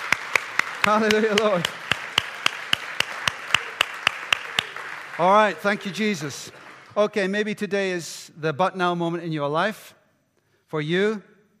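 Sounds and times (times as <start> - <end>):
steady rhythmic audience clapping: 0.0 - 7.2
speech: 0.8 - 1.8, 5.2 - 10.0, 10.7 - 11.3.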